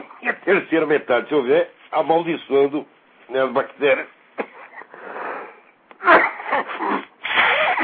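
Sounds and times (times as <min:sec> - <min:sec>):
speech: 0:00.5 - 0:04.2
person with flu sneezing: 0:04.4 - 0:07.8
breathy snuffly bursts: 0:04.6 - 0:07.8
long noisy intake of breath: 0:04.7 - 0:05.8, 0:07.2 - 0:07.8.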